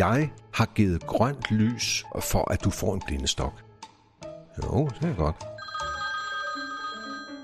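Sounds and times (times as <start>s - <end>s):
speech: 0.0s - 3.7s, 4.6s - 5.8s
telephone ringing: 5.6s - 7.4s.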